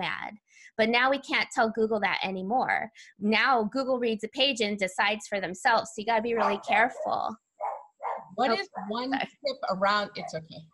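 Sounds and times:
speech: 0:00.0 - 0:07.4, 0:08.4 - 0:10.7
dogs barking: 0:06.4 - 0:09.0.

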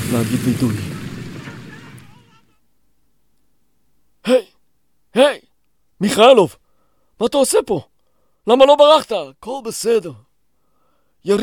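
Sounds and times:
explosion of a crashing helicopter: 0:00.0 - 0:02.4
speech: 0:00.1 - 0:00.9, 0:04.3 - 0:04.5, 0:05.2 - 0:05.4, 0:06.0 - 0:06.6, 0:07.2 - 0:10.2, 0:11.2 - 0:11.4.

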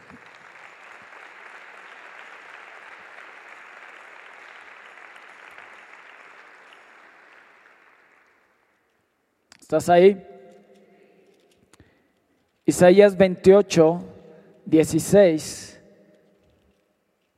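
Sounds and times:
crowd applauding: 0:00.0 - 0:08.9
speech: 0:09.7 - 0:10.3, 0:12.7 - 0:14.1, 0:14.7 - 0:15.7.

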